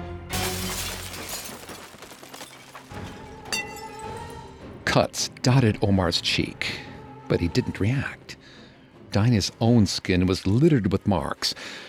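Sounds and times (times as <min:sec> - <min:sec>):
glass shards clattering down on a stage: 0:00.3 - 0:04.4
glass light covers shattering: 0:00.3 - 0:04.5
speech: 0:04.9 - 0:08.3, 0:09.2 - 0:11.8.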